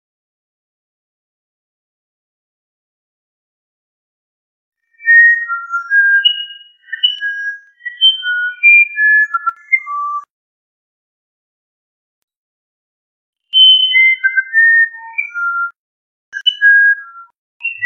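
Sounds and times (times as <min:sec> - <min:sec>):
Musician wren singing flute-like whistles: 0:04.9 - 0:10.3, 0:13.5 - 0:15.8, 0:16.4 - 0:17.8.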